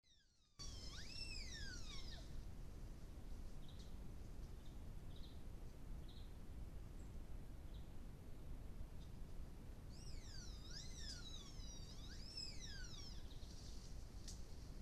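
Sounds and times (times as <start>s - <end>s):
Baird's tapir Tapirus bairdii squealing whistles in Talamanca Costa Rica: 0.6s - 2.3s, 9.9s - 13.3s
steady low rumbling background noise: 0.6s - 14.8s.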